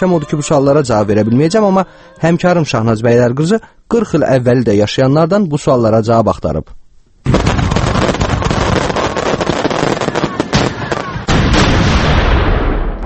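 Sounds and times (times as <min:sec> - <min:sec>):
speech: 0:00.0 - 0:07.5
fireworks bursting over an evening celebration in Baku: 0:07.2 - 0:13.0.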